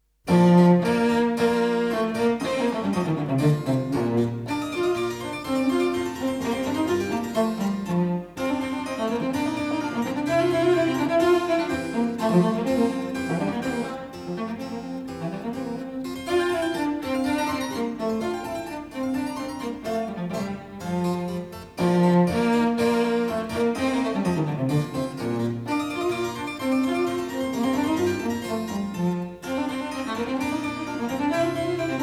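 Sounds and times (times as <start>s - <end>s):
fast music piece: 0.3s - 32.0s.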